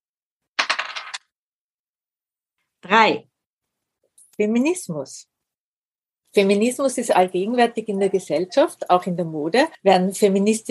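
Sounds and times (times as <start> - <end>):
dice tumbling across a hard surface: 0.6 - 1.2
speech: 2.8 - 3.3, 4.4 - 5.3, 6.3 - 10.6.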